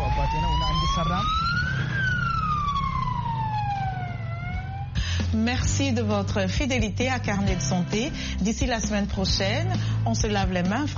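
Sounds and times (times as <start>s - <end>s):
siren of an ambulance built from cheap, easy-to-find materials wailing: 0.0s - 5.0s
low engine rumble: 0.0s - 7.6s
speech: 5.4s - 10.9s.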